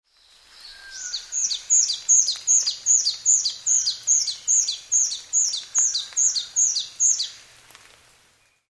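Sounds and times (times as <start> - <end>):
white-browed scrubwren calling: 0.8 - 7.4.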